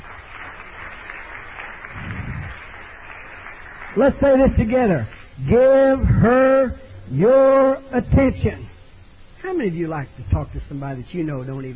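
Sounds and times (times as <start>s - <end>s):
crowd of people clapping their hands: 0.0s - 5.3s
speech: 3.9s - 8.7s, 9.4s - 11.7s.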